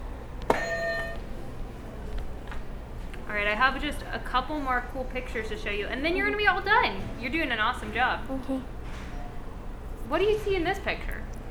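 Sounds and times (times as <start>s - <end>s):
buzzer press with a bright electronic tone: 0.5s - 1.2s
speech: 3.3s - 9.0s, 10.1s - 11.4s.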